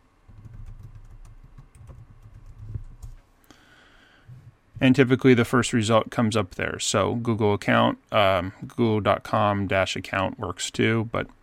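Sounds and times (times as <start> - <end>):
low hum: 0.0 - 11.4
typing a search on a computer keyboard: 0.3 - 3.2
speech: 4.8 - 11.4.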